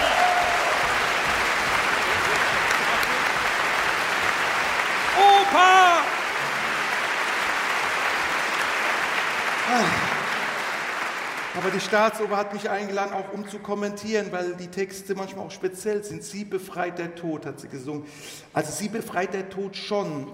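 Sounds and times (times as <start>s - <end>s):
applause from a large audience: 0.0s - 12.9s
voice calling out: 5.2s - 6.2s
speech: 11.6s - 20.3s.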